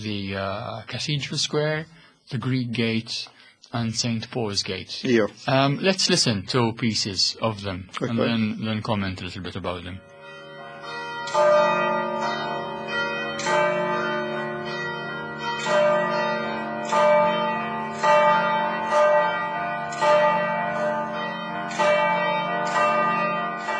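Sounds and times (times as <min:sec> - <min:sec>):
speech: 0:00.0 - 0:10.1
church bells ringing in a cathedral square: 0:09.7 - 0:23.7.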